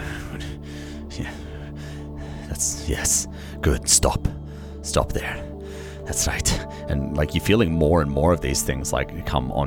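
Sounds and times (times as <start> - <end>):
voice imitating frustrated breathing with heavy strained gasps and huffs: 0.0 - 7.0
speech: 2.6 - 5.5, 6.1 - 9.6.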